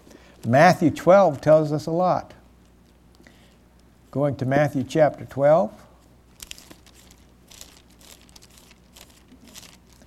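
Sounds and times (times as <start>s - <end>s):
speech: 0.4s - 2.4s, 4.1s - 5.8s
Bible pages being turned with crisp paper rustling: 6.3s - 10.0s.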